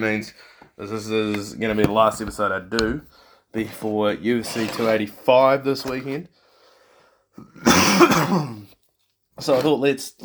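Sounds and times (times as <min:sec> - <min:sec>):
speech: 0:00.0 - 0:06.4, 0:07.4 - 0:08.6, 0:09.4 - 0:10.2
coughing and throat clearing: 0:07.4 - 0:08.7.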